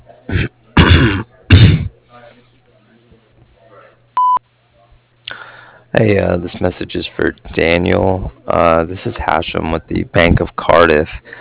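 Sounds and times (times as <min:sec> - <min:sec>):
faint indistinct murmuring: 0:00.0 - 0:06.7
speech: 0:00.3 - 0:00.6, 0:06.0 - 0:11.3
person coughing harshly while clearing throat: 0:00.3 - 0:02.0
voicemail recording beep: 0:04.2 - 0:04.4.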